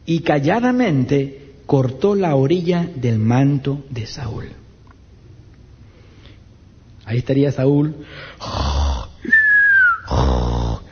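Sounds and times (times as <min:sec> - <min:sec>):
speech: 0:00.1 - 0:04.6, 0:07.1 - 0:09.4
voice imitating a man snoring: 0:08.4 - 0:09.3, 0:10.0 - 0:10.9.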